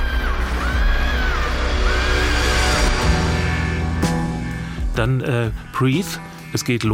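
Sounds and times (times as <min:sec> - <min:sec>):
wailing scream: 0:00.0 - 0:04.1
speech: 0:05.0 - 0:06.9.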